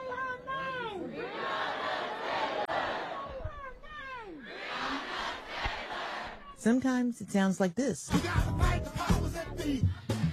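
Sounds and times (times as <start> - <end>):
protest crowd shouting and chanting: 0.0 - 6.7
speech: 6.6 - 10.2.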